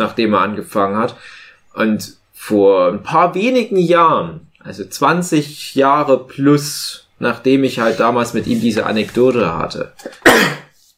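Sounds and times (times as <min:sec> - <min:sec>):
speech: 0:00.0 - 0:10.6
sneeze: 0:10.2 - 0:10.8.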